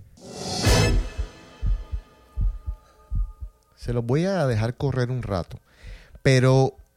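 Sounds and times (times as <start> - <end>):
bright swelling whoosh: 0.1 - 3.2
deep heartbeat-like double thumps in instrumental track: 0.9 - 4.0
speech: 3.8 - 6.8.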